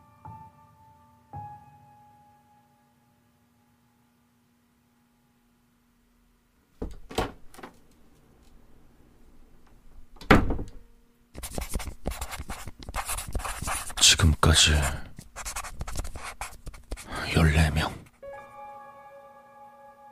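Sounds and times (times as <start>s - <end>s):
bathroom door opening and closing: 6.8s - 7.8s, 10.0s - 10.8s
speech: 6.9s - 7.2s, 14.5s - 15.0s
pen writing on paper in a notebook: 11.4s - 14.0s, 14.8s - 17.2s.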